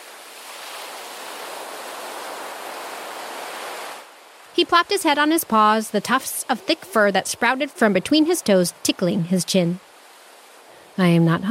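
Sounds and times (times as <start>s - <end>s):
surf breaking on a shore: 0.0s - 11.5s
speech: 4.6s - 9.9s, 11.0s - 11.5s.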